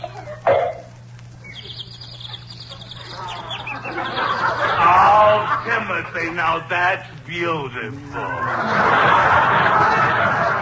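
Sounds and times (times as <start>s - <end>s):
laughter: 0.0s - 0.6s, 1.6s - 7.2s, 7.9s - 10.6s
birds singing and chirping: 0.7s - 7.3s
speech: 6.0s - 10.4s.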